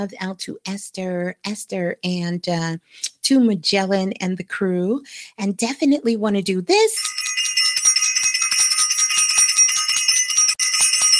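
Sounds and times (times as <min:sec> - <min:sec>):
speech: 0:00.0 - 0:07.2
bell ringing with a rapid rattling clang: 0:07.0 - 0:11.1.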